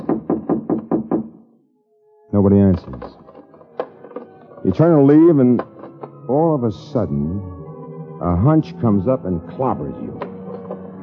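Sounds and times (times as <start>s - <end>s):
knocking on a thin hollow apartment door: 0.0s - 1.4s
speech: 2.3s - 3.2s, 4.6s - 5.7s, 6.3s - 7.5s, 8.2s - 10.3s.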